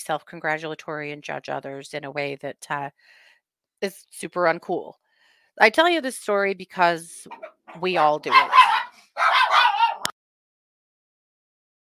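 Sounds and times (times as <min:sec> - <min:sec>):
speech: 0:00.0 - 0:03.2, 0:03.8 - 0:05.0, 0:05.6 - 0:09.4
dog barking in an office: 0:07.3 - 0:10.1.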